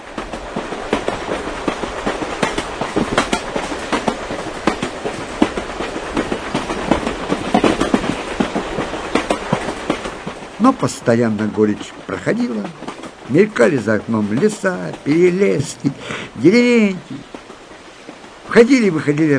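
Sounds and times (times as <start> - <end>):
train wheels clickety-clack on rails: 0.0 - 19.3
speech: 10.6 - 17.3, 18.5 - 19.3.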